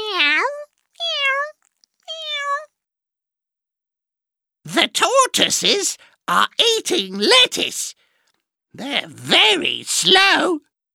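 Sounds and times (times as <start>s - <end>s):
kittens meowing while playing with a toy mouse: 0.0s - 2.7s
speech: 5.0s - 8.0s, 8.7s - 10.7s.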